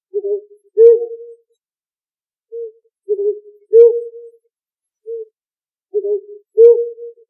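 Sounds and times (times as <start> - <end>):
owl hooting: 0.1 - 1.4, 2.5 - 4.3, 5.9 - 7.2.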